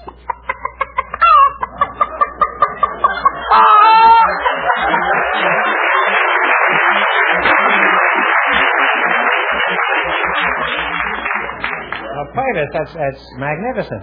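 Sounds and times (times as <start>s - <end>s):
laughter: 0.0s - 13.1s
person imitating a chicken cackling: 3.5s - 4.4s
speech: 12.5s - 14.0s.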